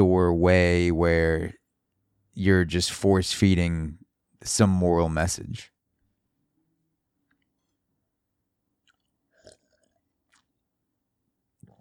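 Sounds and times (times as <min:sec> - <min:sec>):
speech: 0:00.0 - 0:01.6, 0:02.4 - 0:05.7
person gulping water: 0:08.8 - 0:10.5
person sipping water: 0:08.8 - 0:10.5.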